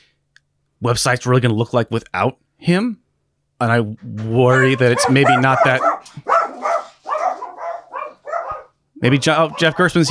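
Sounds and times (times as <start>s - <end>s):
speech: 0.8s - 3.0s, 3.6s - 6.3s, 9.0s - 10.0s
puppies barking: 4.2s - 10.0s.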